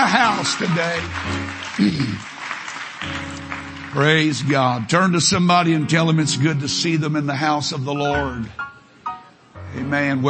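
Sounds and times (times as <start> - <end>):
speech: 0.0 - 2.4, 3.9 - 8.7, 9.7 - 10.2
large crowd applause: 0.0 - 5.0.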